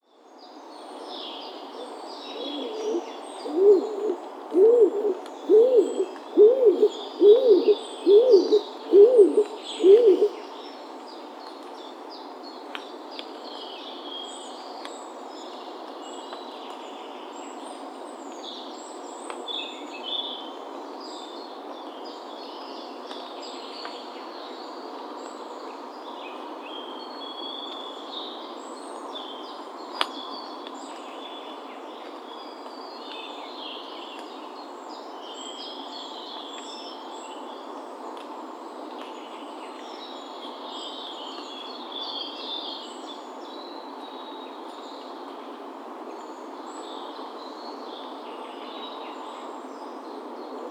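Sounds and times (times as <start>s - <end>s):
stock dove calling: 2.4s - 10.4s.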